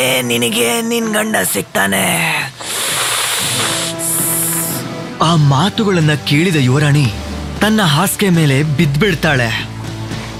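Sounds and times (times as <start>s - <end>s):
speech: 0.0s - 2.6s, 5.2s - 9.7s
snake hissing: 2.3s - 5.0s.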